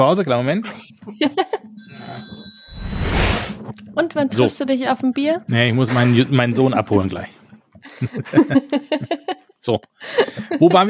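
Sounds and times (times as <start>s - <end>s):
speech: 0.0s - 10.8s
laughter: 1.1s - 1.7s, 5.9s - 7.1s, 7.9s - 9.4s, 10.0s - 10.8s
telephone ringing with a high electronic tone: 1.8s - 2.8s
broad rushing noise: 2.7s - 3.6s.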